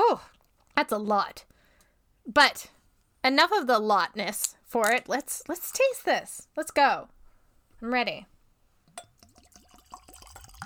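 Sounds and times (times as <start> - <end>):
speech: 0.1 - 1.5, 2.3 - 7.2, 7.8 - 8.3
whiskey glugging from a bottle into a small tasting glass: 9.0 - 10.6.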